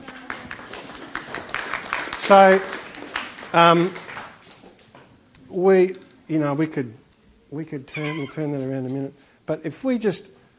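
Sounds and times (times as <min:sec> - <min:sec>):
small group clapping: 0:00.0 - 0:05.1
speech: 0:02.3 - 0:02.8, 0:03.5 - 0:04.0, 0:05.5 - 0:10.4.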